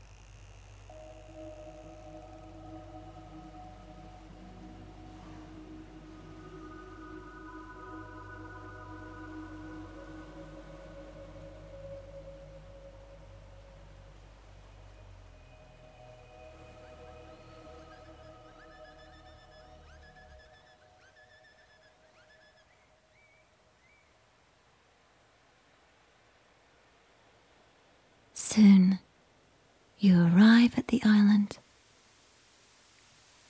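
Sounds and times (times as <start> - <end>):
boat engine rumble: 0.0 - 21.4
small pod of dolphins whistling and chirping in bow waves: 0.8 - 15.2, 16.4 - 24.0
speech: 28.6 - 29.0, 30.0 - 31.6.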